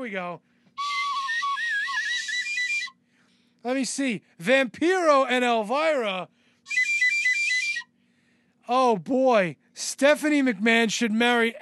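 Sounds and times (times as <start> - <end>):
speech: 0.0 - 0.5, 3.6 - 6.8, 8.7 - 11.6
whistle blast: 0.8 - 3.0, 6.7 - 7.9.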